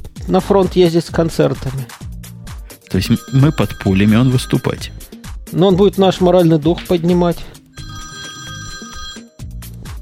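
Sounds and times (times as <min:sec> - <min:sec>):
speech: 0:00.3 - 0:02.0, 0:02.9 - 0:07.6
telephone ringing with an electronic warble: 0:02.9 - 0:05.2, 0:07.6 - 0:09.5.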